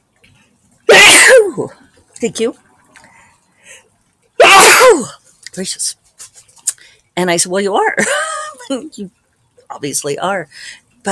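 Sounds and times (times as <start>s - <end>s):
person sneezing: 0.9s - 1.7s, 4.4s - 5.2s
speech: 1.6s - 2.6s, 5.0s - 6.0s, 7.2s - 11.1s.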